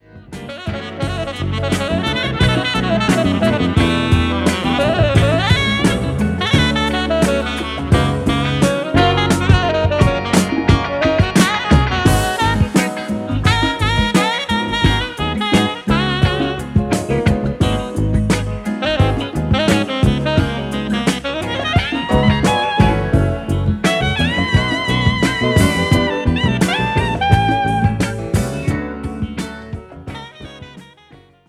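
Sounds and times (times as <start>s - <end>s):
fusion saxophone: 0.2s - 31.4s.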